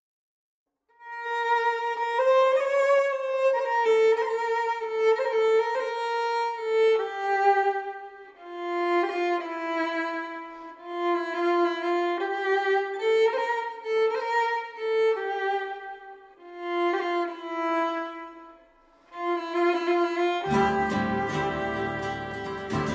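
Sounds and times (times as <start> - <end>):
violin: 0.9 - 22.9.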